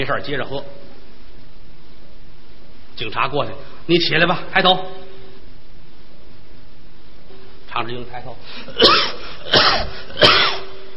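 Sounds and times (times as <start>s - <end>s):
speech: 0.0s - 0.8s, 3.0s - 5.0s, 7.8s - 10.4s
low steady hiss: 0.0s - 10.9s
sharp coughs: 8.6s - 10.9s.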